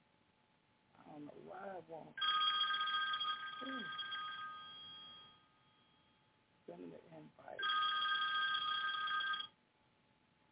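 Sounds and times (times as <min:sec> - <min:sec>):
speech: 0:01.2 - 0:02.4, 0:03.6 - 0:04.0, 0:06.7 - 0:07.9
telephone ringing with a bright electronic trill: 0:02.2 - 0:06.2, 0:07.6 - 0:09.6.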